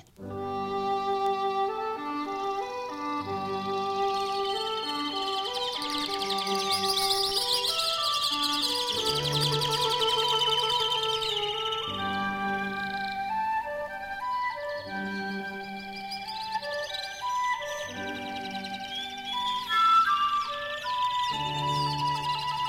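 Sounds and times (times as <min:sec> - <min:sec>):
birds chirping and trilling within orchestral music: 0:00.0 - 0:22.6
orchestral music for cor anglais, clarinet, flute and cello: 0:00.0 - 0:22.6.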